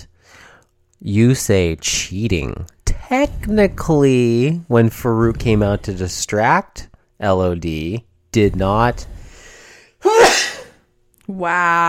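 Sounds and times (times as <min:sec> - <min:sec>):
speech: 0:01.0 - 0:09.2, 0:11.3 - 0:11.8
sneeze: 0:10.0 - 0:10.8.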